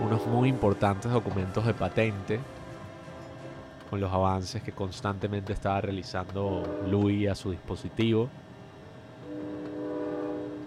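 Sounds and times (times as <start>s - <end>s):
horn-like whine of a train arriving at a station: 0.0s - 3.9s, 6.4s - 7.3s, 8.6s - 10.6s
train rumbling as it arrives at a station: 0.0s - 10.6s
speech: 0.1s - 2.6s, 3.9s - 8.4s.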